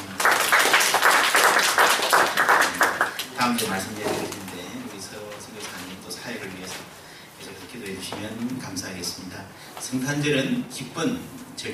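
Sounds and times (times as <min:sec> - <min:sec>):
audience at a Christmas church worship service applauding: 0:00.0 - 0:03.4
speech: 0:03.6 - 0:04.2, 0:07.9 - 0:11.7.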